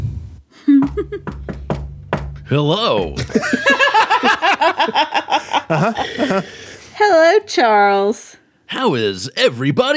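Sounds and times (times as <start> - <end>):
speech: 0.8 - 1.5, 2.5 - 3.9, 4.8 - 9.9
knocking on a door: 0.8 - 2.5
laughter: 3.2 - 6.7.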